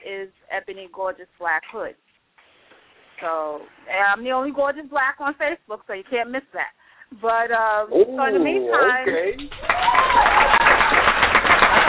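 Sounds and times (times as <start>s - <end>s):
speech: 0.2s - 2.1s, 3.2s - 10.7s
applause: 9.1s - 11.8s.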